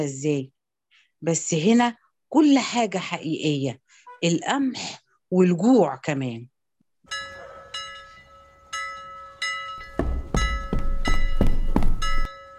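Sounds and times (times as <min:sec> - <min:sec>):
speech: 0:00.0 - 0:00.6, 0:01.2 - 0:06.5
harbour bell ringing an alarm at a fishing port: 0:07.1 - 0:12.5
deep thuds under harbour bell strikes: 0:09.8 - 0:12.3.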